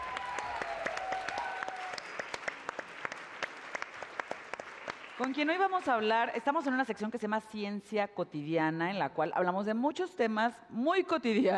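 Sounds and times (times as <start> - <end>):
audience at a preparatory school clapping to welcome a science communicator: 0.0 - 6.1
speech: 5.2 - 11.5.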